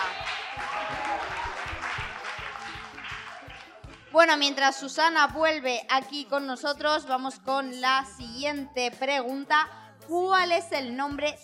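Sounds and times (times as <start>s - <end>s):
dense audience applause for a correct quiz answer: 0.0s - 4.0s
speech: 4.2s - 11.4s.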